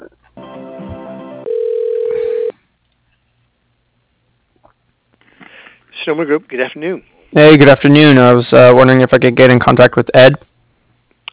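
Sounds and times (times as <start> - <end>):
buzzy harmonic-rich telephone line tone during call transfer to an operator: 1.4 - 2.6
speech: 6.1 - 10.5.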